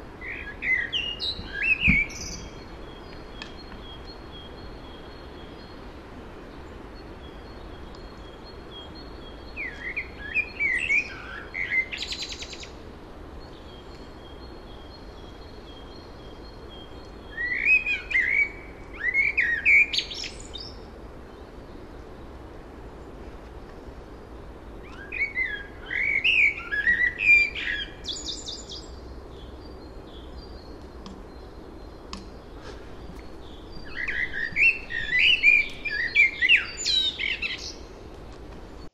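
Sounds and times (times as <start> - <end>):
European robin singing: 0.0 - 22.4, 24.1 - 38.1
steady hiss: 0.0 - 38.9.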